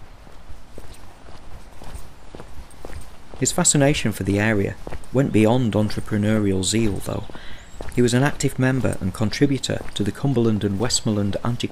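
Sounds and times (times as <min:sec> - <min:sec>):
constant hiss: 0:00.0 - 0:11.7
footsteps of a person walking in a valley: 0:00.0 - 0:11.7
speech: 0:03.4 - 0:11.7.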